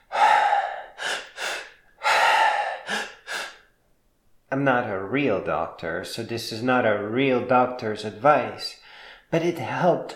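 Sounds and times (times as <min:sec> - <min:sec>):
person inhaling twice in one breath: 0:00.0 - 0:03.8, 0:08.8 - 0:09.3
speech: 0:04.5 - 0:10.1.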